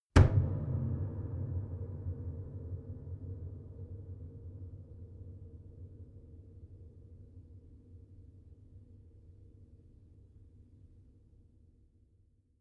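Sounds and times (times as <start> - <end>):
hit on piano body: 0.1 - 4.8.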